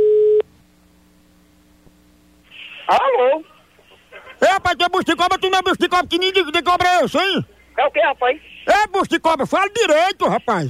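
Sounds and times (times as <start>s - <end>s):
ringback tone on an outgoing telephone call: 0.0s - 0.4s
faint low hum: 0.0s - 10.6s
speech: 2.9s - 3.5s, 4.6s - 10.6s.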